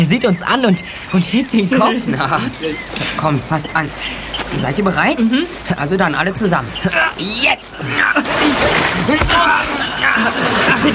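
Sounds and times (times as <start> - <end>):
speech: 0.0 - 10.9
people chuckling: 1.7 - 4.6, 7.7 - 10.9
water sloshing: 2.1 - 10.9.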